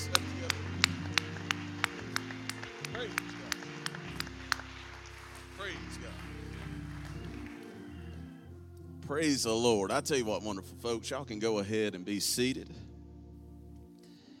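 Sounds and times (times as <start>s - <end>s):
audience clapping hands in praise: 0.0s - 8.3s
sustained keyboard or organ chords: 0.0s - 14.3s
speech: 9.1s - 12.8s.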